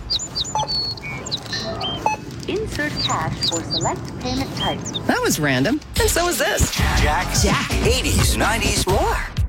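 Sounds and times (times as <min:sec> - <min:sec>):
sparrow chirping at a store self-checkout: 0:00.0 - 0:05.7
speech: 0:02.5 - 0:09.3.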